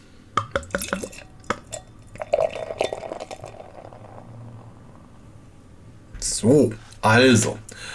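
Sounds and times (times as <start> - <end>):
beer poured into a glass with a gurgling fizzy stream: 0.6 - 4.6
speech: 6.4 - 7.6.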